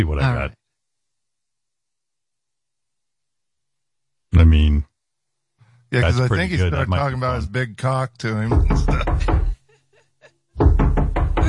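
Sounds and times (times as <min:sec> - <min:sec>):
speech: 0:00.0 - 0:00.6, 0:04.3 - 0:04.9, 0:05.9 - 0:09.4
loud firm knocking on a door: 0:08.5 - 0:09.6, 0:10.6 - 0:11.4.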